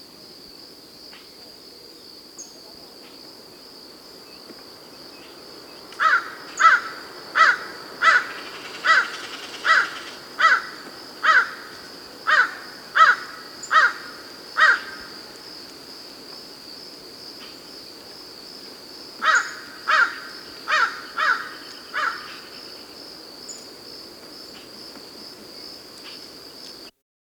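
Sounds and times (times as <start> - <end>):
common crow cawing: 6.0 - 15.2, 19.2 - 22.5.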